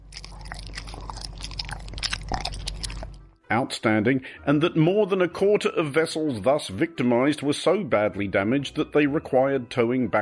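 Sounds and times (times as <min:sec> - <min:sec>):
orcas chewing off a boat's rudder: 0:00.0 - 0:03.4
speech: 0:03.5 - 0:10.1.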